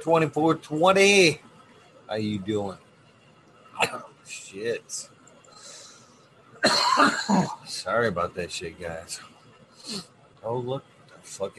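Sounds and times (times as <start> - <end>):
speech: 0.0 - 1.5, 2.1 - 2.8, 3.8 - 5.2, 6.6 - 11.5
loud harsh raspy cough: 3.8 - 4.1, 6.6 - 7.7.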